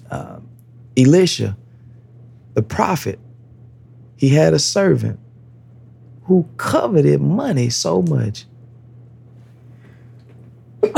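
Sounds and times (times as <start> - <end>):
quiet room hum: 0.0 - 10.9
speech: 1.0 - 1.6, 2.6 - 3.2, 4.2 - 5.2, 6.3 - 8.5.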